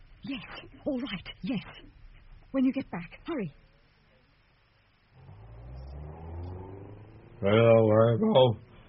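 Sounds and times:
speech: 0.3s - 3.6s, 7.4s - 8.6s
car engine revving as the vehicle pulls away: 5.1s - 8.5s.

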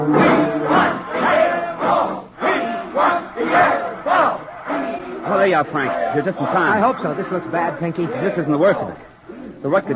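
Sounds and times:
angry crowd of rooters shouting in front of the Yale dressing room: 0.1s - 8.9s
speech: 5.5s - 9.9s.

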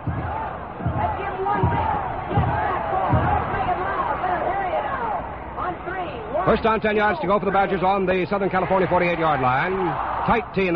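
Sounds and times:
football cheering section chanting at a football game: 0.0s - 5.3s
constant roar of stadium noise: 0.0s - 10.7s
speech: 6.4s - 10.7s.

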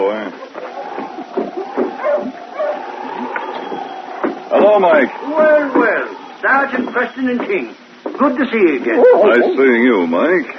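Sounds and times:
sled dogs of a dog team barking in front of a trading post: 0.6s - 3.5s, 8.9s - 9.8s
speech: 4.7s - 10.5s
steady high whine: 8.8s - 10.1s.

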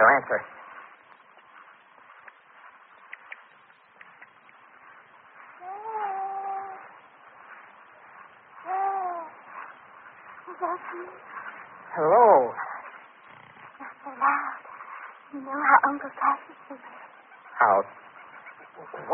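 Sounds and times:
speech: 0.0s - 0.6s, 10.8s - 11.4s, 12.0s - 12.6s, 15.3s - 17.0s, 17.6s - 18.0s, 18.9s - 19.1s
steady hiss: 0.0s - 19.1s
owl-like hooting bird call: 4.1s - 19.1s.

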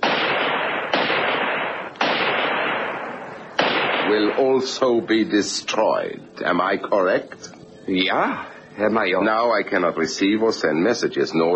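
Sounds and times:
Mauser gunshots fired at a radio transmitter: 0.0s - 5.0s
speech: 4.1s - 11.5s.

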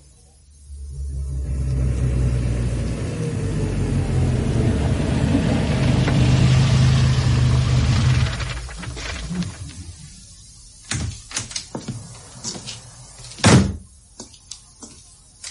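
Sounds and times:
Mini car engine revving and rumbling while approaching: 0.7s - 9.6s.

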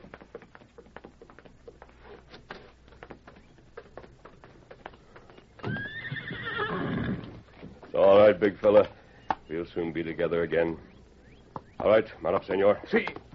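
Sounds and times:
horse hooves clip-clopping in a patio: 0.0s - 13.3s
horse whinnying: 5.6s - 7.4s
speech: 8.3s - 10.9s, 11.8s - 13.2s.

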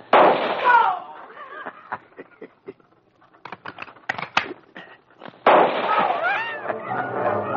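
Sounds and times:
volley of sharp gunshots: 0.0s - 0.9s, 5.4s - 6.4s
laughter: 1.2s - 3.0s, 5.9s - 7.4s.

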